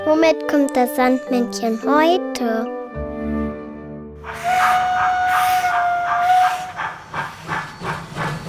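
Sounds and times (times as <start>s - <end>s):
speech: 0.2s - 2.8s
steam locomotive whistle: 4.2s - 7.6s
steam hissing: 4.3s - 8.4s.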